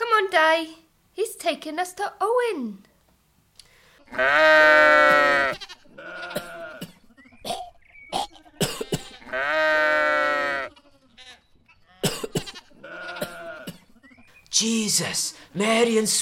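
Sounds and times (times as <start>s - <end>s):
speech: 0.3s - 2.9s, 4.1s - 6.1s, 14.6s - 16.2s
sick sheep bleating in a barn: 4.0s - 7.2s, 8.3s - 14.2s
sick sheep coughing and throat-clearing in a barn: 4.0s - 14.2s.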